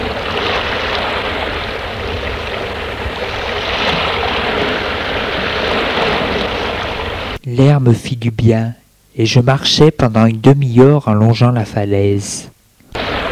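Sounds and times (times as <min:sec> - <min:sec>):
ocean surf: 0:00.0 - 0:07.4, 0:12.9 - 0:13.2
speech: 0:07.6 - 0:12.6.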